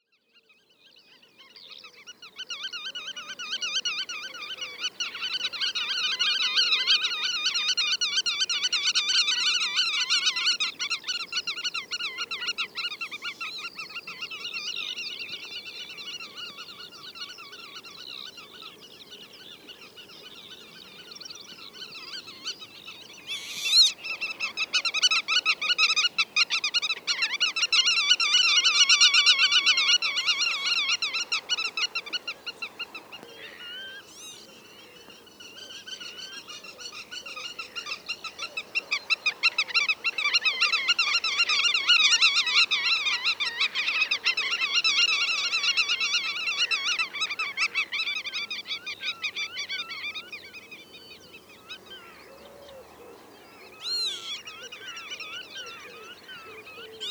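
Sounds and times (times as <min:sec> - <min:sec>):
black-tailed godwit Limosa limosa calling: 0:02.2 - 0:57.0.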